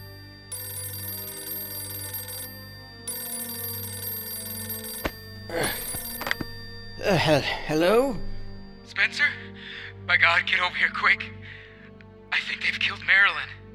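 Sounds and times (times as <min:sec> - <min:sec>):
telephone bell ringing: 0:00.0 - 0:08.9
clatter of a telephone receiver being picked up: 0:05.9 - 0:07.0
speech: 0:07.1 - 0:08.3, 0:08.9 - 0:09.4, 0:10.1 - 0:11.4, 0:12.5 - 0:13.6.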